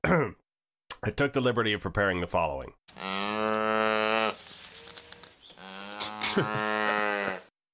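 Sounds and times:
speech: 0:00.1 - 0:00.4, 0:01.0 - 0:03.1, 0:06.4 - 0:06.8
calf mooing in long low bellows: 0:02.9 - 0:07.5.

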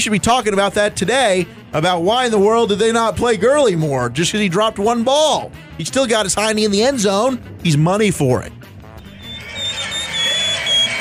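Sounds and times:
speech: 0:00.0 - 0:08.6
roar of a large stadium crowd: 0:09.0 - 0:11.0
shrill sustained human mouth whistle in a stadium: 0:09.0 - 0:11.0.

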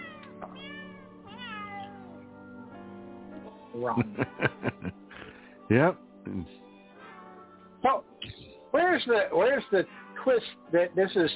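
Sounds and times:
cats meowing as they are squeezed: 0:00.0 - 0:02.3
speech: 0:03.8 - 0:05.0, 0:05.7 - 0:06.6, 0:07.8 - 0:11.3
laughter: 0:03.8 - 0:05.3.

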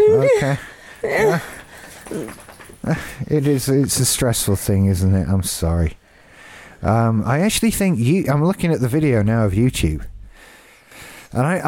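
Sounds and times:
dog whimpering: 0:00.0 - 0:02.6
speech: 0:00.3 - 0:06.0, 0:06.8 - 0:10.1, 0:11.3 - 0:11.6.

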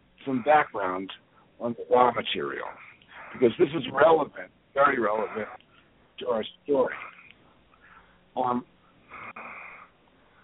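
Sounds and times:
heavy raspy breathing on a thin phone line: 0:00.2 - 0:03.7, 0:05.0 - 0:05.9, 0:06.9 - 0:08.3, 0:08.9 - 0:10.4
speech: 0:00.2 - 0:05.6, 0:06.2 - 0:07.1, 0:08.4 - 0:08.7.

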